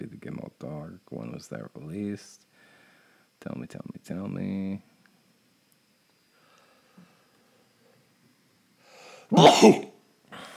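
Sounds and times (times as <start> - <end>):
faint airy hiss: 0.0 - 10.5
speech: 0.7 - 2.5, 3.4 - 4.9, 9.3 - 9.9
breathy inhale: 2.5 - 3.4, 6.3 - 7.6, 8.8 - 9.3
person sneezing: 9.2 - 10.5.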